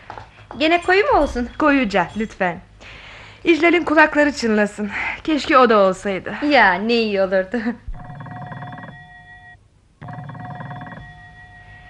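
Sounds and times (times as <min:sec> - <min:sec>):
low hum: 0:00.0 - 0:11.8
speech: 0:00.6 - 0:07.8
telephone ringing with electronic warble: 0:07.9 - 0:11.8.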